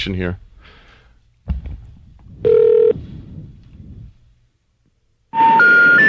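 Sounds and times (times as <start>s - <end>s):
low rumble: 1.3s - 5.2s
dull knock: 1.5s - 1.9s
sustained telephone beep during a call attempt: 2.4s - 3.0s, 5.4s - 6.0s.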